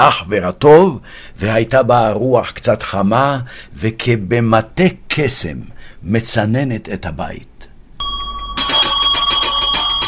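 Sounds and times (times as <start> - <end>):
speech: 0.0 - 7.6
ice seller's hand bell ringing: 8.0 - 10.0.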